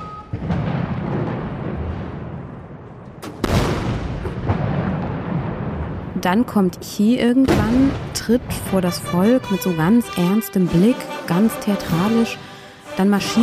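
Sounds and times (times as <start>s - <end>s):
heavy booms of cannon fire at a military parade: 0.2s - 6.4s, 7.4s - 8.8s
dense rumbling backdrop: 0.3s - 13.4s
speech: 6.2s - 13.4s.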